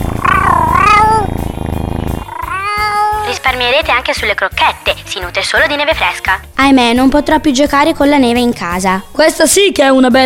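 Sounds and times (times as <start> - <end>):
domestic cat meowing: 0.0 - 1.5, 2.1 - 3.5
speech: 3.5 - 10.2.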